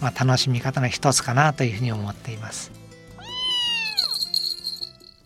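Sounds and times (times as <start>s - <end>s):
speech: 0.0s - 2.8s
pet cat meowing: 3.2s - 4.3s.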